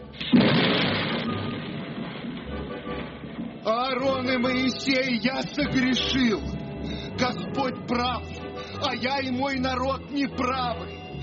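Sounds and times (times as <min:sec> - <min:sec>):
steady hiss of heavy rain and hail: 0:00.1 - 0:04.2
thunder crack rolling into a long low rumble: 0:00.2 - 0:04.0
speech: 0:03.9 - 0:06.6, 0:07.2 - 0:11.0.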